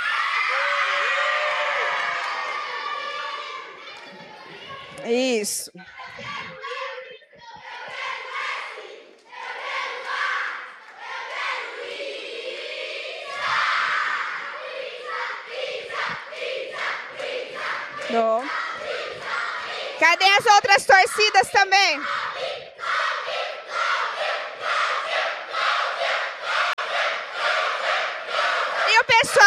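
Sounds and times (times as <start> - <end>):
cheering and whoops: 0.0 - 3.8
crowd noise: 0.0 - 29.4
speech: 5.1 - 6.4, 18.1 - 18.4, 20.0 - 22.2
group of school students shouting a rhythmic team battle cry: 7.6 - 20.0, 22.0 - 29.4.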